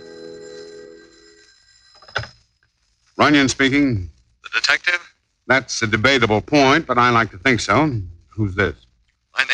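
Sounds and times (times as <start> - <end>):
telephone bell ringing in an office: 0.0 - 2.4
speech: 3.2 - 9.5.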